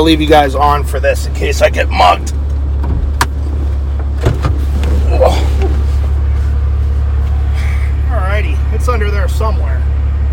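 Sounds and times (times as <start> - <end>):
speech: 0.0 - 3.0, 8.7 - 9.8
car engine idling: 0.0 - 10.3
sharp clunks of a car door or hood: 2.8 - 4.9.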